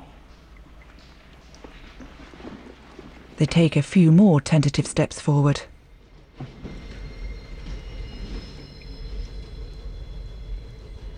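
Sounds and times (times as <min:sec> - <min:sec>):
speech: 0:03.4 - 0:05.7
steam train approaching down the tracks with a deep rumble: 0:05.6 - 0:11.1
thin high metallic squeals of a steam train: 0:06.0 - 0:11.1.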